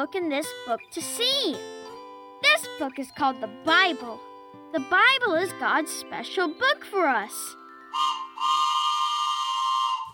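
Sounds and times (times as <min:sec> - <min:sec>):
speech: 0:00.0 - 0:01.8, 0:02.5 - 0:08.1
steam train whistle blasts: 0:07.9 - 0:10.1.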